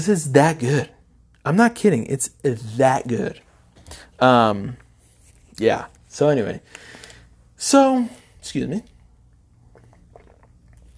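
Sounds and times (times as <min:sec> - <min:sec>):
speech: 0:00.0 - 0:04.8, 0:05.6 - 0:07.0, 0:07.6 - 0:08.9
quiet hum: 0:00.0 - 0:10.9
small sip from a drink: 0:08.8 - 0:10.9.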